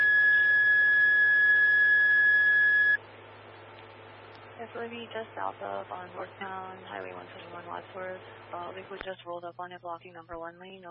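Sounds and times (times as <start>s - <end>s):
electronic fire dispatch alert tone over radio for a commercial fire call: 0.0s - 3.0s
low hum: 0.0s - 10.8s
speech: 4.6s - 10.8s.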